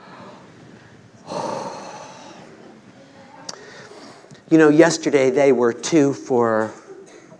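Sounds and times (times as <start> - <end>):
group taking a deep breath together as an exercise: 0.0 - 2.6, 3.5 - 4.4
speech: 4.5 - 6.8.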